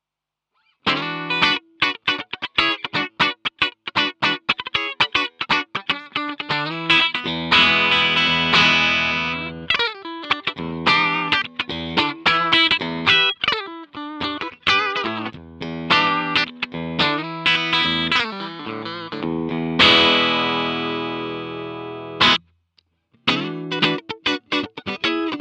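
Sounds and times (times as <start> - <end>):
clean guitar tone: 0.8 - 22.5, 23.2 - 25.3.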